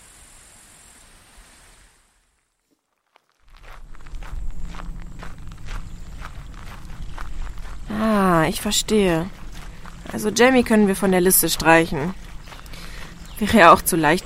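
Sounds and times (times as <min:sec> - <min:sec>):
footsteps crunching outdoors: 0:02.6 - 0:14.2
speech: 0:08.4 - 0:09.4, 0:10.1 - 0:12.2, 0:13.4 - 0:14.2.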